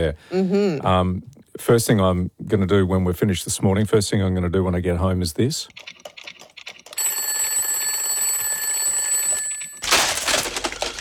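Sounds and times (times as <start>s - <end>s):
speech: 0.0s - 5.9s
shrill electronic alarm clock ringing: 7.0s - 10.1s
loud burst of broadband clattering noise: 9.8s - 10.9s.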